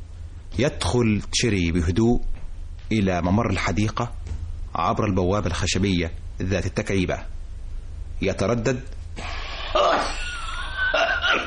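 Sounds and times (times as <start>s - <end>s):
speech: 0.6s - 4.2s, 4.8s - 7.4s, 8.2s - 10.2s
man stifling a cough in a stage play: 9.2s - 11.4s.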